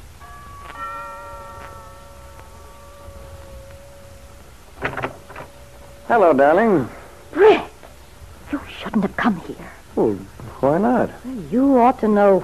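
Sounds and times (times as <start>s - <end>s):
door chime ringing: 0.0s - 8.6s
speech: 6.1s - 7.5s, 9.0s - 12.4s.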